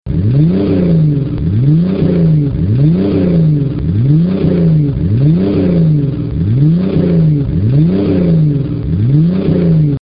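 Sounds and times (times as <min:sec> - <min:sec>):
Wrangler 4.0L engine with swept side: 0:00.0 - 0:10.0.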